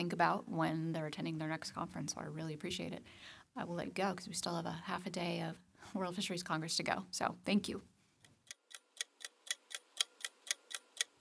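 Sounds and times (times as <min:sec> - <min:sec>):
speech: 0:00.0 - 0:07.9
clock ticking: 0:08.2 - 0:11.1.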